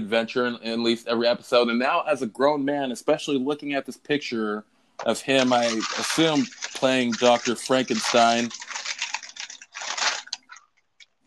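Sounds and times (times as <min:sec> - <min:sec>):
speech: 0:00.0 - 0:08.6
bag of chips being opened, crinkling: 0:05.0 - 0:11.2
scattered rustles and clicks: 0:05.0 - 0:11.2.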